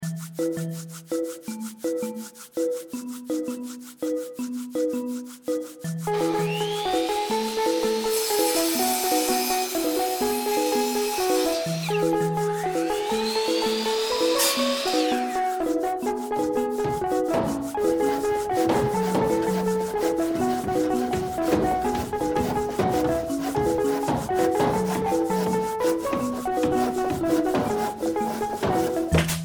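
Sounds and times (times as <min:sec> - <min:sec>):
steady tonal music: 0:00.0 - 0:29.4
speech: 0:00.4 - 0:02.0
wood being sanded or planed during furniture making in a woodworking workshop: 0:05.3 - 0:29.4.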